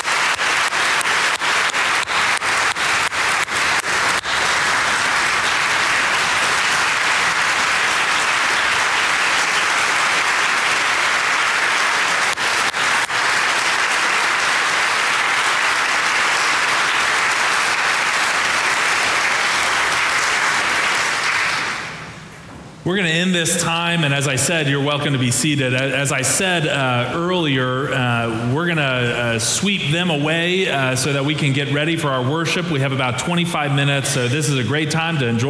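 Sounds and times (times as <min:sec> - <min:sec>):
large audience applauding at a church community gathering: 0:00.0 - 0:22.2
speech: 0:22.9 - 0:35.4.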